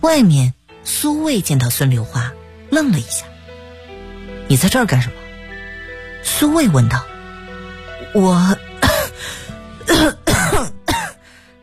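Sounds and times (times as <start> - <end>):
speech: 0.0 - 3.3, 4.5 - 5.2, 6.2 - 7.1, 8.1 - 8.6
frightened person coughing hard and deliberately: 8.8 - 9.2, 9.8 - 11.2.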